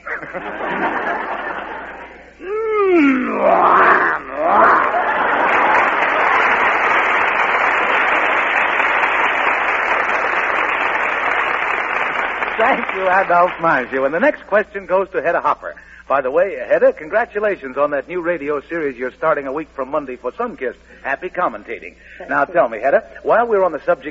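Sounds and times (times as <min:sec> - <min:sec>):
laughter: 0:00.0 - 0:07.3, 0:22.2 - 0:22.8
speech: 0:00.3 - 0:01.2, 0:13.2 - 0:24.0
man imitating a lion's growl: 0:02.4 - 0:05.1
loud sustained audience applause: 0:04.4 - 0:14.0.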